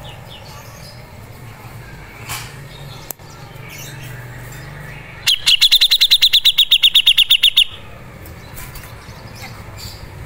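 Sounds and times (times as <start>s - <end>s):
Grey-cheeked bulbul call: 5.3s - 7.9s.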